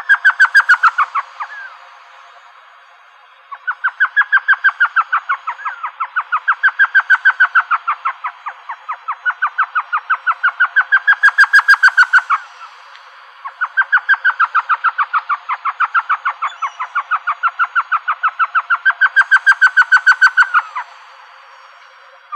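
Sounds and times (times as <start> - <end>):
elf owl giving yelping notes in Arizona: 0.0 - 1.7, 3.6 - 12.5, 13.4 - 20.9.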